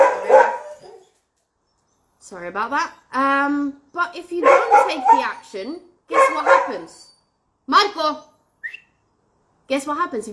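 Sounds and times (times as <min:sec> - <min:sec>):
dogs barking in sharp yelps: 0:00.0 - 0:01.1, 0:04.4 - 0:07.0
speech: 0:02.2 - 0:07.1, 0:07.7 - 0:08.3, 0:09.7 - 0:10.3.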